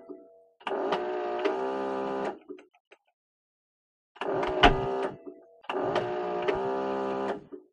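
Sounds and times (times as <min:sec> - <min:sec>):
small electric motor: 0:00.6 - 0:02.4, 0:04.2 - 0:07.5.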